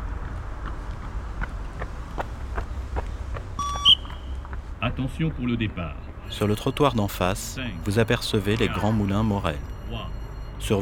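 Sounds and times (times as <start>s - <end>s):
low rumble of street noise: 0.0s - 10.8s
short electronic beeps: 3.6s - 4.2s, 6.2s - 10.8s
speech: 4.9s - 10.8s.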